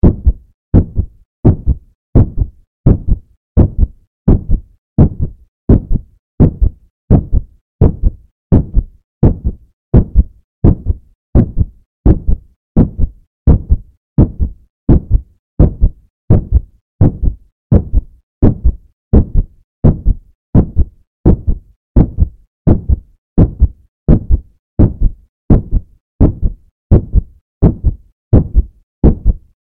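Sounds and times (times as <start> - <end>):
heartbeat: 0.0 - 29.5.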